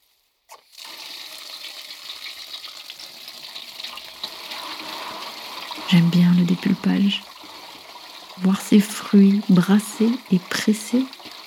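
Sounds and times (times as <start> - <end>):
water from a tap running into a large iron basin with a sieve: 0.0 - 11.4
speech: 5.9 - 7.3, 8.4 - 11.2.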